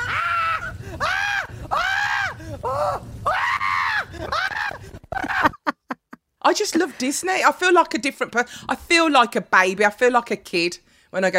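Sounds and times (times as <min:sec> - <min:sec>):
steady rumbling rushing background: 0:00.0 - 0:05.2
riders screaming on a roller coaster: 0:00.0 - 0:05.6
speech: 0:06.5 - 0:11.3.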